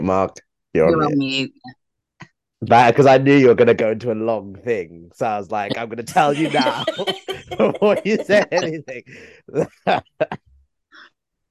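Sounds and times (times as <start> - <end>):
speech: 0.0 - 1.8, 2.6 - 10.5
laughter: 5.7 - 10.4
person coughing: 6.2 - 8.7
person clearing throat: 6.3 - 8.7.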